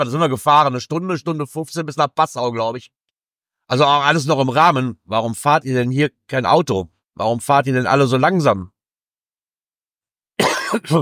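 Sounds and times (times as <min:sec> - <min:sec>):
speech: 0:00.0 - 0:03.0, 0:03.7 - 0:08.8, 0:10.7 - 0:11.0
harsh cough: 0:10.4 - 0:11.0.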